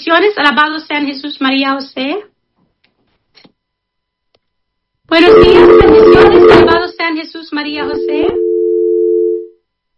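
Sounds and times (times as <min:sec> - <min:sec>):
speech: 0:00.1 - 0:02.3, 0:05.1 - 0:08.5
telephone tone after a dropped call: 0:05.2 - 0:06.8, 0:07.8 - 0:09.5.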